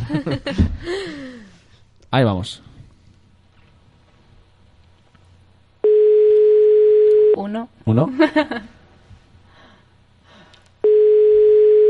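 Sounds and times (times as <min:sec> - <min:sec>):
person laughing: 0:00.0 - 0:01.2
speech: 0:02.1 - 0:02.7, 0:07.4 - 0:08.8
telephone ringback tone on an outgoing phone call: 0:05.8 - 0:07.4, 0:10.8 - 0:11.8.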